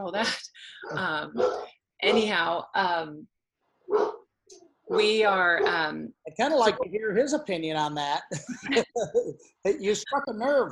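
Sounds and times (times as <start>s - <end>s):
speech: 0.0s - 10.7s
dogs barking: 0.8s - 2.3s, 3.9s - 4.2s
laughter: 8.3s - 9.4s.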